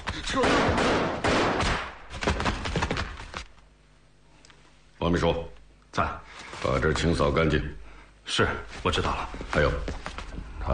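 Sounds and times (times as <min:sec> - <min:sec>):
sharp gunfire cracks and thuds: 0:00.0 - 0:03.5
speech: 0:00.3 - 0:00.9, 0:05.1 - 0:10.1
gunshot blast in a tense interrogation scene: 0:00.3 - 0:02.0.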